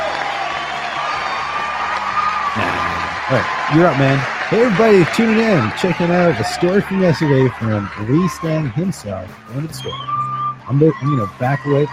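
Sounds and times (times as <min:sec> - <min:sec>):
applause: 0:00.0 - 0:08.6
crowd cheering and whooping: 0:00.0 - 0:11.9
speech: 0:03.3 - 0:11.9.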